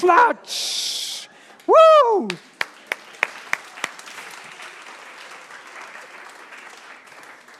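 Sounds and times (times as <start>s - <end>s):
speech: 0.0s - 0.9s, 1.7s - 2.5s
scattered audience applause: 2.1s - 7.5s
sharp claps: 2.2s - 7.5s.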